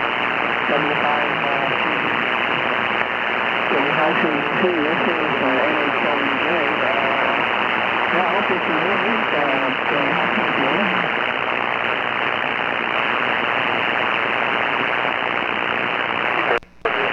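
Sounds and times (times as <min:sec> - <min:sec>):
amateur radio static hiss: 0:00.0 - 0:17.1
faint garbled voice over amateur radio: 0:00.7 - 0:02.1, 0:03.7 - 0:07.4, 0:08.1 - 0:11.1.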